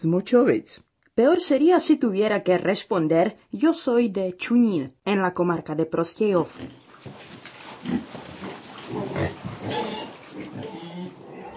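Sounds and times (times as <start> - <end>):
speech: 0.0 - 8.3
pig grunting and snorting: 6.5 - 11.5.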